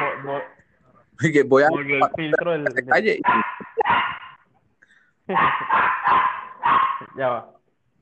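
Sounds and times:
speech: 0:01.2 - 0:04.0, 0:05.3 - 0:06.4, 0:07.2 - 0:07.6
laughter: 0:02.0 - 0:04.0
dog barking: 0:03.2 - 0:04.4, 0:05.3 - 0:07.2.

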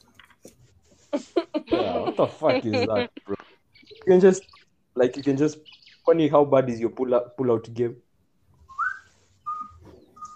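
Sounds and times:
speech: 0:00.4 - 0:08.0
laughter: 0:01.1 - 0:03.6
person whistling short clear notes: 0:08.7 - 0:10.3.

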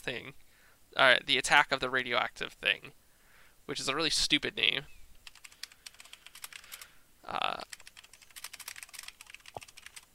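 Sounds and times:
speech: 0:00.0 - 0:03.0, 0:03.7 - 0:05.0, 0:07.3 - 0:07.8
rapid clicking of keys on a computer keyboard: 0:05.2 - 0:06.9, 0:07.6 - 0:10.1.

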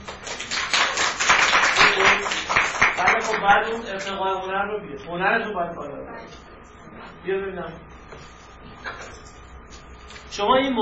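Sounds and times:
room full of people clapping: 0:00.1 - 0:03.5
speech: 0:03.4 - 0:06.4, 0:07.2 - 0:07.9, 0:10.4 - 0:10.8.

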